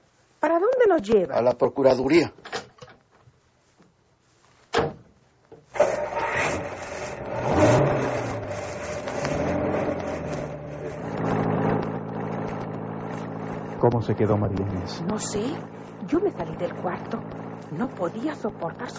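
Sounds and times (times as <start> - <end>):
speech: 0.4 - 2.4, 13.9 - 18.9
car engine starting and running as the car pulls away: 5.7 - 18.9.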